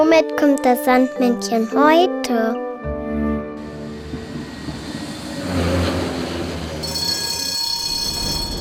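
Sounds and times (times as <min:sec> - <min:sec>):
speech: 0:00.1 - 0:02.6
tram rumbling on rails: 0:03.6 - 0:08.5
high metallic tram wheel squeals: 0:05.3 - 0:08.5.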